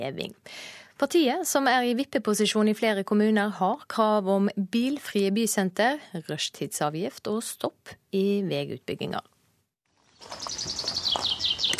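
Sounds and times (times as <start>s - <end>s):
speech: 0.0s - 9.3s
birds singing: 10.0s - 11.7s.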